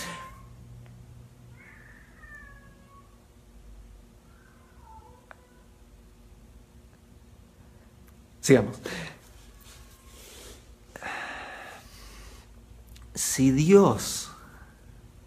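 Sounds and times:
cat meowing at the door to come in: 0.0s - 0.5s, 1.5s - 3.2s, 4.3s - 5.7s
low steady hum: 0.0s - 15.2s
speech: 8.4s - 9.0s, 13.4s - 14.3s.

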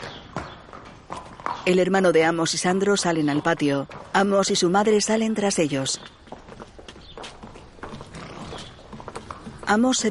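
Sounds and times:
hooves of a horse led by the reins across a courtyard: 0.0s - 10.0s
speech: 1.6s - 6.3s, 9.7s - 10.0s.

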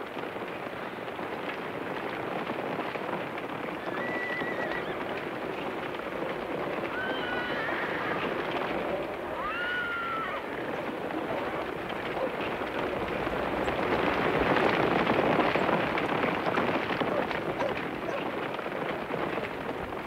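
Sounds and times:
many horse hooves clip-clopping on an estancia in Río Grande, Magallanes: 0.0s - 20.0s
horses neighing and whinnying on an estancia in Río Grande, Magallanes: 3.9s - 5.1s, 6.8s - 12.4s.

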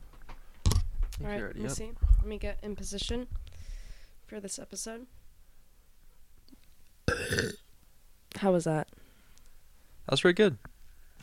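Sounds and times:
speech: 1.2s - 3.4s, 4.3s - 5.2s, 8.4s - 8.8s, 10.1s - 10.7s
loud burp: 7.1s - 7.6s.

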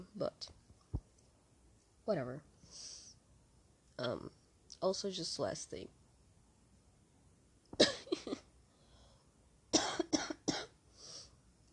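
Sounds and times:
speech: 0.1s - 0.6s, 2.1s - 2.9s, 4.0s - 6.0s
soft breath: 2.6s - 3.2s, 8.6s - 9.4s, 10.9s - 11.5s
dry coughing: 7.8s - 8.5s, 9.8s - 10.8s.

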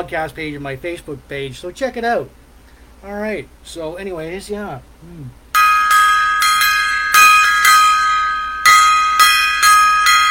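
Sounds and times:
speech: 0.0s - 2.4s, 3.0s - 5.4s
small gong being struck: 5.6s - 10.3s.

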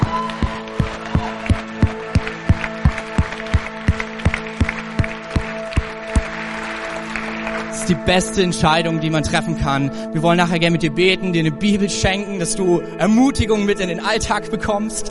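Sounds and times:
audience clapping rhythmically: 0.0s - 8.1s
sustained musical backdrop: 0.0s - 14.8s
speech: 7.9s - 15.0s.

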